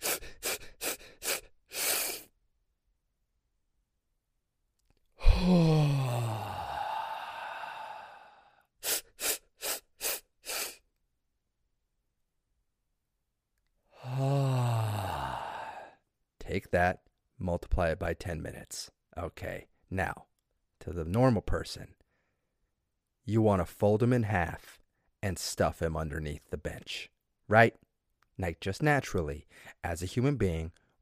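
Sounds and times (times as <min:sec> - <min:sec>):
voice imitating forceful deep breathing exercise: 0:00.0 - 0:02.3, 0:05.2 - 0:10.8, 0:13.9 - 0:16.0
speech: 0:16.6 - 0:22.0, 0:23.2 - 0:27.8, 0:28.4 - 0:31.0.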